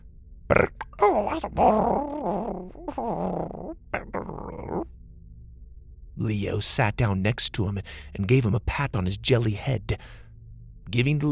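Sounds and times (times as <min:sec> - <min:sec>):
speech: 0:00.5 - 0:03.8, 0:06.2 - 0:10.2, 0:10.9 - 0:11.2
small jelly-headed creature whimpering over a chocolate bar: 0:00.5 - 0:04.9.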